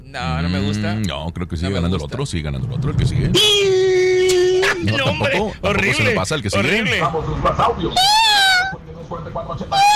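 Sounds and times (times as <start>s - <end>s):
speech: 0.1s - 8.4s, 9.1s - 9.9s
cat meowing: 8.0s - 8.8s, 9.7s - 9.9s.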